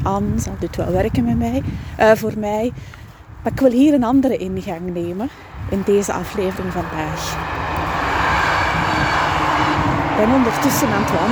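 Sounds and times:
speech: 0.1 - 7.7, 10.2 - 11.2
passing train roaring along the Demer river: 5.4 - 11.2.

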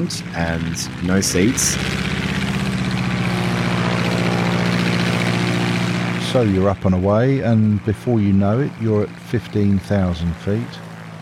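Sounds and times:
speech: 0.0 - 2.1, 6.3 - 10.9
propeller plane engine roaring in flight heard from inside: 0.0 - 11.1.

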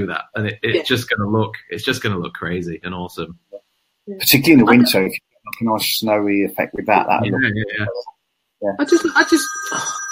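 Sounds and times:
speech: 0.0 - 3.4, 4.1 - 10.0
electronic telephone ringing: 8.9 - 10.1.

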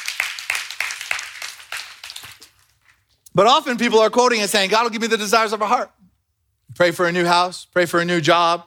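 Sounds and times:
audience clapping in rhythm: 0.0 - 3.2
speech: 3.4 - 6.0, 6.8 - 8.6.

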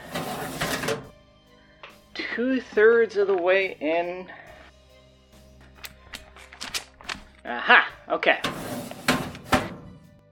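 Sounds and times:
drawer sliding open with rough rattling scrape: 0.0 - 1.1, 8.4 - 10.0
speech: 2.4 - 4.4, 7.5 - 8.8.

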